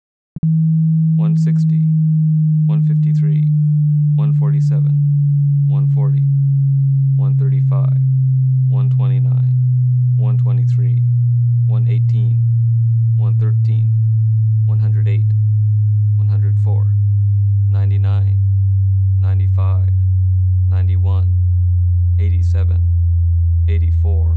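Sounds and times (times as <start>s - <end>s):
low-frequency sweep tone for subwoofer evaluation and setup: 0.4s - 24.3s
person speaking voiceover: 1.2s - 1.9s, 2.7s - 3.5s, 4.2s - 5.0s, 5.7s - 6.3s, 7.2s - 8.1s, 8.7s - 9.6s, 10.2s - 11.1s, 11.7s - 12.4s, 13.2s - 14.0s, 14.7s - 15.3s, 16.2s - 17.0s, 17.7s - 18.4s, 19.2s - 20.0s, 20.7s - 21.4s, 22.2s - 22.9s, 23.7s - 24.3s.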